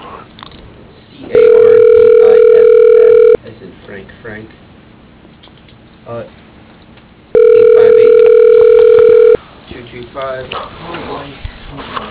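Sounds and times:
ringback tone of an outgoing telephone call: 1.4 - 3.4, 7.4 - 9.4.

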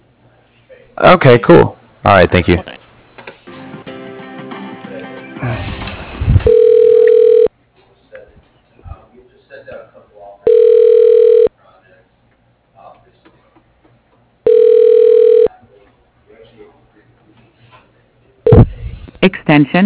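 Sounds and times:
speech: 1.0 - 2.8, 19.6 - 19.8
telephone ringback on a call being transferred to voicemail: 6.5 - 7.5, 10.5 - 11.5, 14.5 - 15.5.

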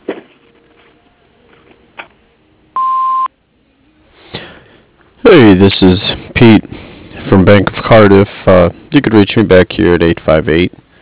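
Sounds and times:
handling noises: 0.0 - 2.4
electronic answering machine beep: 2.8 - 3.3
speech: 5.2 - 10.8.

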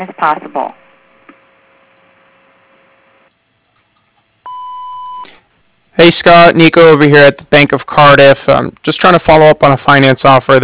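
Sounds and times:
speech: 0.0 - 0.8, 6.0 - 10.6
low electrical hum: 0.0 - 10.6
answering machine beep tone: 4.5 - 5.3.

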